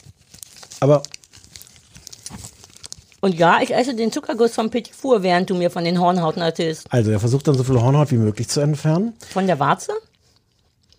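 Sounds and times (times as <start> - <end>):
soft tearing of paper wrapper: 0.0 - 3.2
paper wrapper of a petit four rustling and crinkling: 0.0 - 10.9
speech: 0.8 - 1.2, 3.2 - 10.1.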